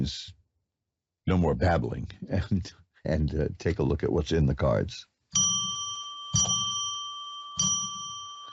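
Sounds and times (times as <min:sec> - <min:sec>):
speech: 0:00.0 - 0:00.4, 0:01.3 - 0:05.4
small bell struck to declare sacred space: 0:05.3 - 0:08.5.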